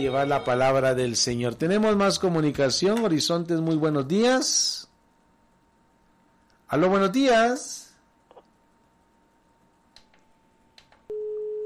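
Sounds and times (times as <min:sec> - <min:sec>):
speech: 0:00.0 - 0:04.8, 0:06.7 - 0:07.8
telephone busy tone after a call was cut off: 0:11.1 - 0:11.6.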